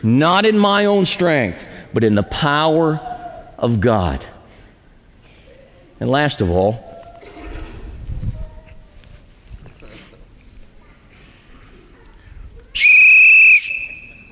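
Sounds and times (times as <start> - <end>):
speech: 0.0 - 4.3, 6.0 - 6.9
referee's whistle blast: 12.8 - 14.3.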